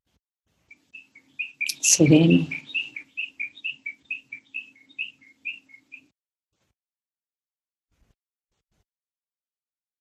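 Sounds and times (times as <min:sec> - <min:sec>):
wild birds chirping: 0:00.7 - 0:06.1
speech: 0:01.8 - 0:02.6.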